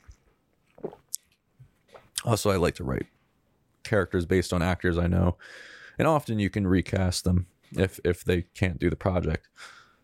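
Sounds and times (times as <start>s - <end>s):
person drinking water: 0.0s - 2.2s
speech: 2.2s - 3.2s, 3.9s - 9.8s.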